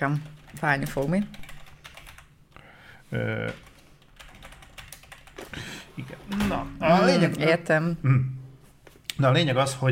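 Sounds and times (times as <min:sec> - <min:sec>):
speech: 0:00.0 - 0:01.4, 0:03.1 - 0:03.7, 0:06.0 - 0:08.4, 0:09.2 - 0:09.9
fingers typing quickly on a computer keyboard: 0:00.0 - 0:02.3, 0:03.5 - 0:05.5.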